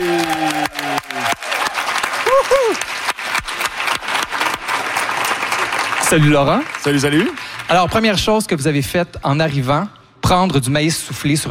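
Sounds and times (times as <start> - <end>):
audience cheers and whoops: 0.0 - 3.1
studio audience applause: 0.0 - 8.1
speech: 6.1 - 11.4.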